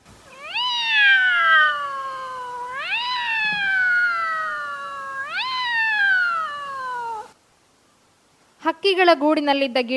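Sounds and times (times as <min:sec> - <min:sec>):
two cats fighting on school grounds: 0:00.3 - 0:07.4
speech: 0:08.8 - 0:09.9.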